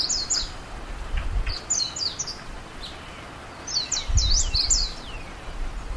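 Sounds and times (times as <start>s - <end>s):
Japanese white-eye giving thin high descending chirps: 0.0s - 0.6s, 1.4s - 5.6s.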